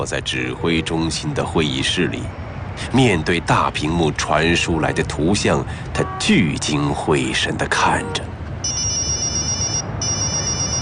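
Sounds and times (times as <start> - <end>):
speech: 0.0 - 8.3
mobile phone ringing with a high electronic trill: 8.6 - 10.8.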